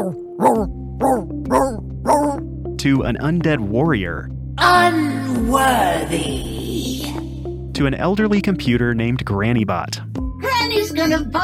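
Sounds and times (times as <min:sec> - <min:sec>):
voice actor imitating a singing dog: 0:00.0 - 0:02.4
speech: 0:00.1 - 0:01.8, 0:02.8 - 0:06.6, 0:07.8 - 0:10.1, 0:10.8 - 0:11.4.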